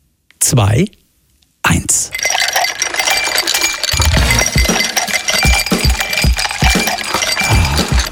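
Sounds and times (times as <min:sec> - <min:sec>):
speech: 0:00.4 - 0:01.0, 0:01.7 - 0:02.3
ice cubes clinking and rattling: 0:02.1 - 0:08.1.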